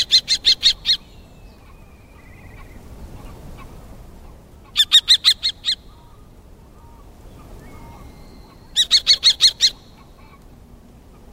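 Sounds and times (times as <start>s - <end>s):
common kestrel calling at Watarase Retarding Basin: 0.0s - 3.7s, 4.6s - 6.2s, 7.4s - 10.4s.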